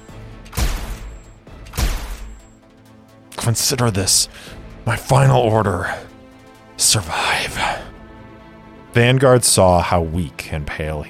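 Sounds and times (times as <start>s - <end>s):
gunshots fired around a corner: 0.5s - 2.5s
speech: 3.4s - 6.1s, 6.8s - 7.8s, 9.0s - 11.0s.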